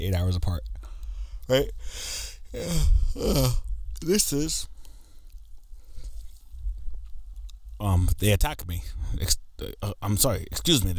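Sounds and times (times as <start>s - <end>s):
speech: 0.0s - 0.8s, 1.5s - 4.7s, 7.8s - 10.9s
quiet breathy noise: 0.8s - 6.4s
drawn-out voiced yawn with groaning wavering pitch: 1.4s - 4.2s.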